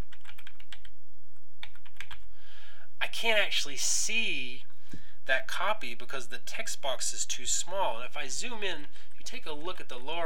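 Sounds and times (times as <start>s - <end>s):
typing on a computer keyboard: 0.0s - 1.0s, 1.6s - 2.3s
speech: 3.1s - 4.7s, 5.3s - 10.2s.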